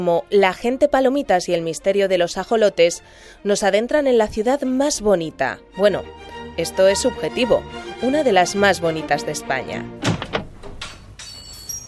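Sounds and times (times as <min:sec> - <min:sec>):
speech: 0:00.0 - 0:10.2
door latch and handle rattling clicks: 0:10.0 - 0:11.3
door creaking as it swings: 0:10.0 - 0:11.8.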